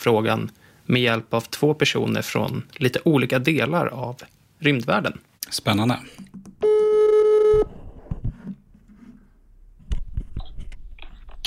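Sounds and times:
speech: 0.0 - 6.4
telephone tone from an outgoing call: 6.6 - 7.7.

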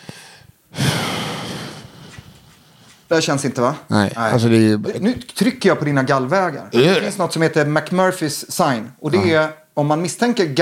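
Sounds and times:
deep breathy inhalation during a medical examination: 0.0 - 3.0
speech: 3.1 - 10.6.

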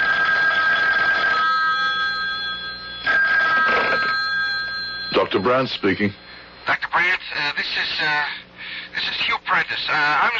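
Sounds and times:
telephone ringing during outgoing call: 0.0 - 6.1
speech: 5.3 - 8.4, 9.0 - 10.3.

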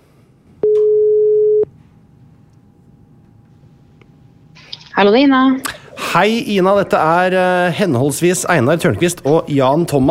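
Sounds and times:
steady telephone ringing tone while calling: 0.6 - 1.7
speech: 5.0 - 10.0.

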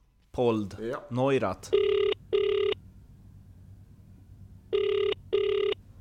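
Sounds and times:
faint low hum: 0.0 - 6.0
speech: 0.4 - 2.0
outgoing phone call ringback tone of short electronic beeps: 1.8 - 2.8, 4.7 - 5.8.

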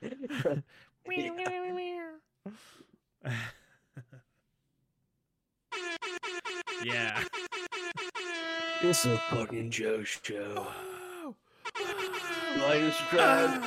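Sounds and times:
speech: 0.4 - 1.9, 2.5 - 3.6, 8.8 - 10.9, 12.6 - 13.6
loud sustained air horn blasts: 5.7 - 9.7, 11.6 - 13.6
brief breathy vocal sounds: 10.6 - 11.4.

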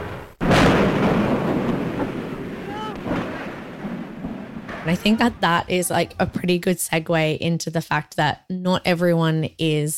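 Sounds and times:
hydrogen airship crashing and burning, archival recording: 0.0 - 6.4
speech: 4.9 - 9.9.

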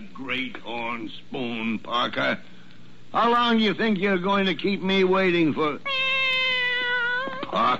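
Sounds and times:
speech: 0.4 - 2.5, 3.1 - 5.9, 7.5 - 7.7
cat on an office desk meowing: 5.8 - 7.6.

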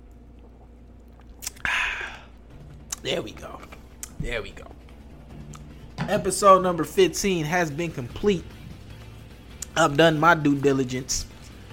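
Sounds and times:
loud slurping sip of a drink: 0.4 - 3.0
speech: 3.0 - 4.8, 6.1 - 8.6, 9.8 - 11.3.

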